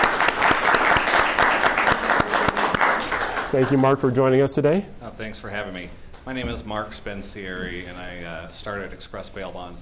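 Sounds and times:
audience clapping: 0:00.0 - 0:04.2
speech: 0:03.5 - 0:09.8.

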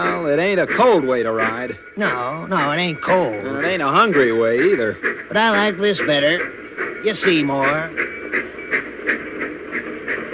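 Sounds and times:
speech: 0:00.0 - 0:08.2
streamliner train wheels clicking: 0:00.0 - 0:10.3.

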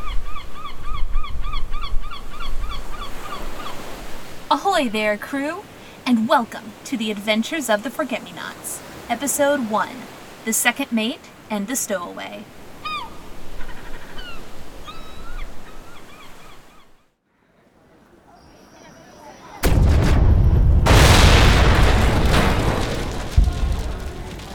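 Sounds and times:
birds hooting and chirping: 0:00.0 - 0:04.0, 0:12.8 - 0:17.1
speech: 0:04.5 - 0:12.6
loud rumbling explosions with sharp cracking bursts: 0:19.6 - 0:24.5.

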